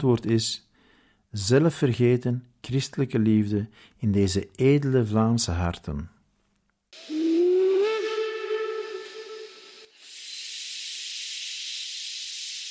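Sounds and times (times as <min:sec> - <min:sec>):
speech: 0:00.0 - 0:00.7, 0:01.3 - 0:06.2
steam train whistle: 0:07.0 - 0:10.5
hissing steam from departing train: 0:07.0 - 0:12.7.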